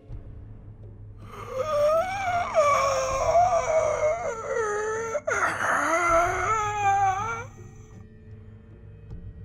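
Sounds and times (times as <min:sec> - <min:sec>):
low rumbling background: 0:00.0 - 0:09.3
creature's rusty bird-like screeching cry: 0:01.3 - 0:07.7.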